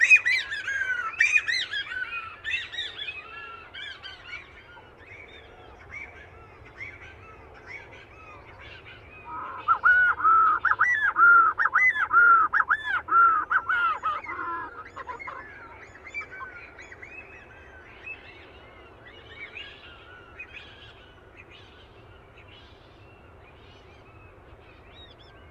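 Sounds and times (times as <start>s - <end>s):
Boyd's shearwater calling: 0.0s - 4.9s, 6.0s - 17.0s.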